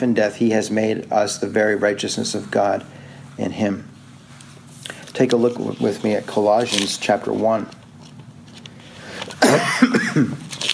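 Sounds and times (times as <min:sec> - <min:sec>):
speech: 0:00.0 - 0:03.9, 0:05.2 - 0:07.8, 0:09.4 - 0:10.4
throaty coughs: 0:09.4 - 0:10.4.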